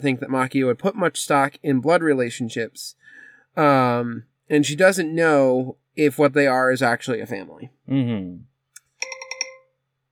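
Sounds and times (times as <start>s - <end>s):
speech: 0.0s - 8.5s
phone alarm ringtone with electronic blip and pulsing chime notes: 9.0s - 9.8s.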